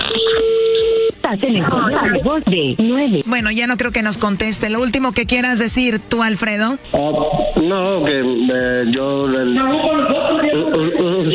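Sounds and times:
telephone tone of a call being dialed: 0:00.0 - 0:01.2, 0:06.9 - 0:07.7
speech: 0:01.3 - 0:11.3.

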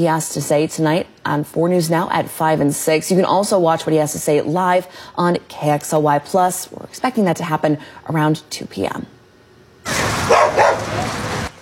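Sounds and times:
speech: 0:00.0 - 0:09.2
dogs barking at a public pool: 0:10.2 - 0:11.3.

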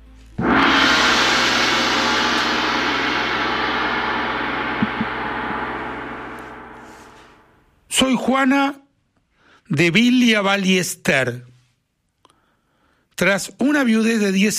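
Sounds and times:
single strike on an ancient cymbal made in the Mongol Empire: 0:00.4 - 0:07.8
speech: 0:08.2 - 0:08.8, 0:09.7 - 0:11.5, 0:13.2 - 0:14.5.

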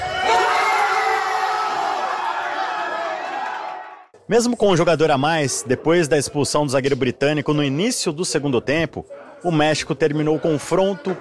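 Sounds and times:
large crowd of football fans shouting and cheering: 0:00.0 - 0:04.2
speech: 0:04.3 - 0:11.1.

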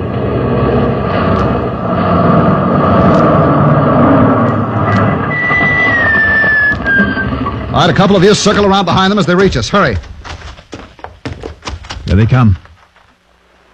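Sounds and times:
thin rising whine: 0:00.0 - 0:08.8
heavy military truck engine roaring while swerving across a road: 0:00.0 - 0:09.7
speech: 0:07.8 - 0:10.1, 0:12.2 - 0:12.6.

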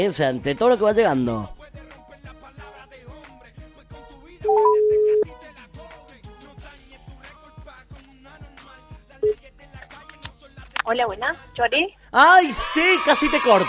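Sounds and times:
speech: 0:00.0 - 0:01.8, 0:10.9 - 0:13.6
rhythmic music bed: 0:00.1 - 0:11.7
quick rising beeps: 0:04.5 - 0:05.3
telephone ringing tone of an outgoing call: 0:04.5 - 0:05.3.

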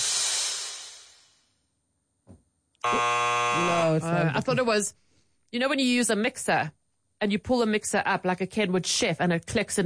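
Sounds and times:
loud harsh game show buzzer: 0:02.8 - 0:04.0
speech: 0:04.2 - 0:09.8.

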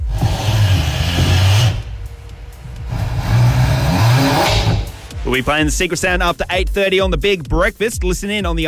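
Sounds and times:
2025 Ford Mustang GT Fastback demo model with six-speed gearbox engine revving: 0:00.0 - 0:06.8
speech: 0:05.3 - 0:08.6.

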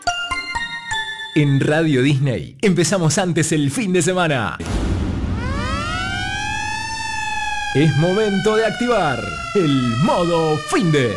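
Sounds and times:
speech: 0:01.4 - 0:04.9, 0:07.7 - 0:11.1
siren sound effect wailing: 0:04.6 - 0:11.1.

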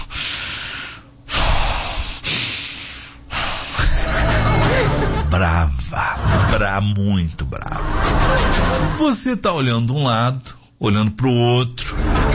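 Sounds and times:
person imitating a wife's heavy angry breathing with huffs and snorts: 0:00.0 - 0:04.0
laughter: 0:03.8 - 0:06.7
speech: 0:06.5 - 0:12.1.

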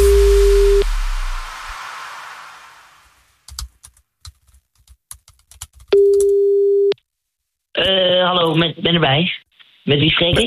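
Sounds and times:
burst of hiss: 0:00.0 - 0:03.5
steady electronic telephone tone: 0:06.0 - 0:07.0
speech: 0:07.8 - 0:10.4.

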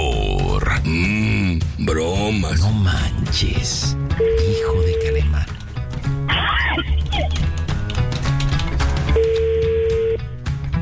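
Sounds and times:
busy music: 0:00.0 - 0:10.7
speech: 0:02.3 - 0:05.5
steady telephone ringing tone: 0:09.1 - 0:10.2.

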